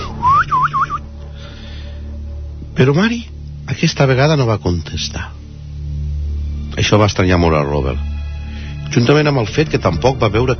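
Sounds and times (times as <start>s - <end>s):
man whistling a short signal tune at night: 0.1s - 1.1s
speech: 2.8s - 5.4s, 6.8s - 8.1s, 8.9s - 10.5s.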